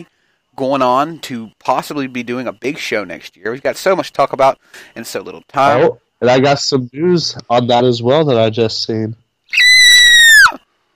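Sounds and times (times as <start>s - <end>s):
speech: 0.0s - 9.6s
excited high-pitched human squeal: 9.5s - 10.6s.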